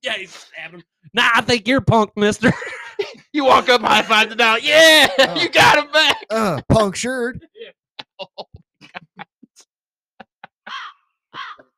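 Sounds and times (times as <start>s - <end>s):
speech: 0.0s - 8.6s
laughter: 2.4s - 6.9s, 8.0s - 9.4s
crows cawing: 10.7s - 11.6s.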